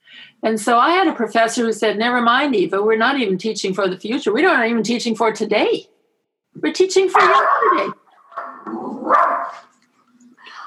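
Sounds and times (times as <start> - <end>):
speech: 0.4 - 5.9, 6.6 - 8.0
Shetland sheepdog barking: 7.1 - 9.7.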